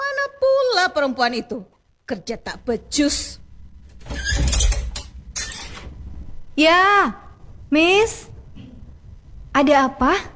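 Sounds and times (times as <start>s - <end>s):
speech: 0.8s - 3.4s, 6.6s - 8.3s, 9.6s - 10.3s
door creaking open: 3.0s - 6.5s.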